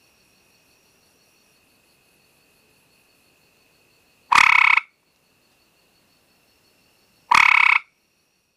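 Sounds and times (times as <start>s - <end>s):
gray treefrog Hyla versicolor trilling: 4.3s - 5.0s, 7.3s - 8.0s.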